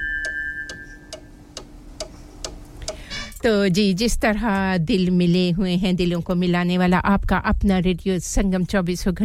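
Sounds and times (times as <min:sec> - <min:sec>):
studio clock ticking: 0:00.0 - 0:03.3
faint hum: 0:00.0 - 0:09.2
speech: 0:03.4 - 0:09.2.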